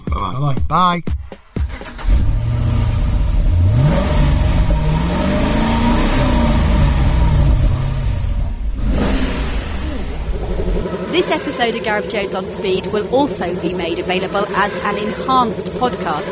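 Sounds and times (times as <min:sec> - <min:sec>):
speech: 0:00.3 - 0:01.3, 0:11.2 - 0:16.3
car engine revving: 0:01.6 - 0:16.3.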